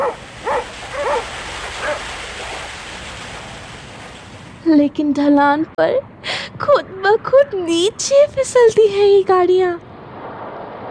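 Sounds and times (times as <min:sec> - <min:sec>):
sled dogs in the Russian tundra barking and yipping: 0:00.0 - 0:02.1
speech: 0:04.7 - 0:09.9.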